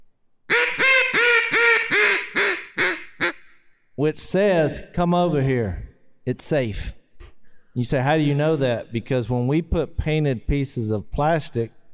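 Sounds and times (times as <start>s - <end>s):
human voice imitating a hen duck's greeting call: 0.5s - 3.4s
speech: 4.0s - 7.0s, 7.8s - 11.8s.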